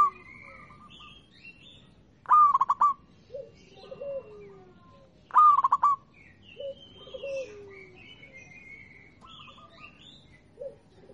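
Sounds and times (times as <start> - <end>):
zebra dove of the local type singing: 0.0 - 1.0, 2.2 - 6.0, 6.6 - 8.2, 10.5 - 11.1.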